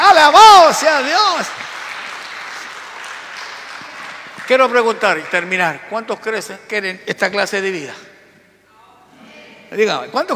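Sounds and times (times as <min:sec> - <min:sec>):
large crowd applauding standing: 0:00.6 - 0:06.5
speech: 0:00.7 - 0:01.7, 0:04.5 - 0:08.1, 0:09.7 - 0:10.3.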